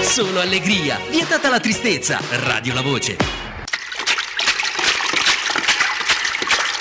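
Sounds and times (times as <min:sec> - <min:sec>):
speech: 0:00.1 - 0:03.5
water splashing and sloshing: 0:03.7 - 0:06.7.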